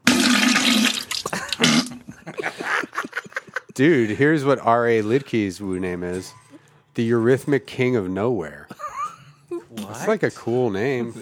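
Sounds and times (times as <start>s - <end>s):
violent toilet flush: 0.0s - 2.0s
laughter: 1.2s - 4.6s, 8.6s - 9.8s, 10.8s - 11.1s
speech: 3.8s - 6.4s, 7.0s - 8.8s, 9.9s - 11.1s.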